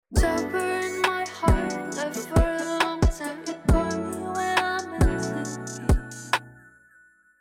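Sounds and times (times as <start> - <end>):
vocals: 0.0 - 6.7.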